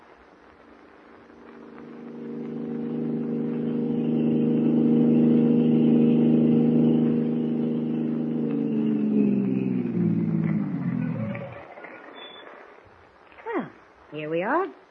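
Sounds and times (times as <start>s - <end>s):
car engine humming while driven: 0.9s - 11.7s.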